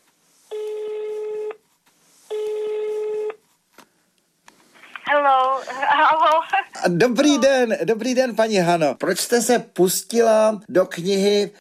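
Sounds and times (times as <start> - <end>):
faint noise: 0.0 - 11.5
landline telephone ring tones over the earpiece: 0.5 - 1.6, 2.3 - 3.4
speech: 5.6 - 11.5.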